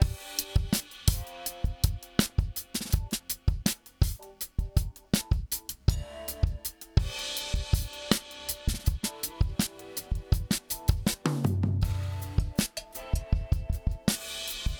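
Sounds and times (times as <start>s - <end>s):
compressed drums: 0.0s - 14.7s.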